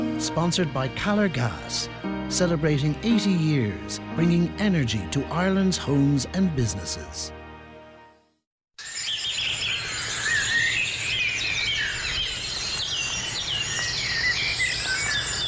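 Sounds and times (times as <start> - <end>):
speech: 0.2 - 7.4
dawn birdsong chorus on an early-summer morning in Ireland: 8.9 - 15.4.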